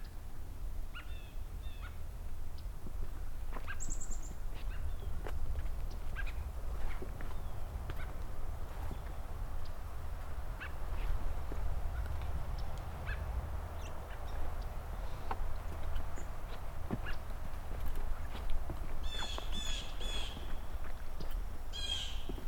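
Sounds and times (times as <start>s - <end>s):
low outdoor rumble: 0.0s - 22.4s
blue jay giving harsh buzzy calls: 0.9s - 2.0s, 3.6s - 5.3s, 5.9s - 17.8s, 19.0s - 20.8s, 21.7s - 22.4s
other birds chirping: 1.0s - 22.4s.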